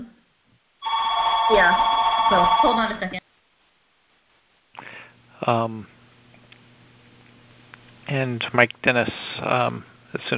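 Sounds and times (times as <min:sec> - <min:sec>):
house landline phone ringing: 0:00.8 - 0:03.2
speech: 0:01.5 - 0:03.2, 0:05.4 - 0:06.0, 0:08.1 - 0:10.3.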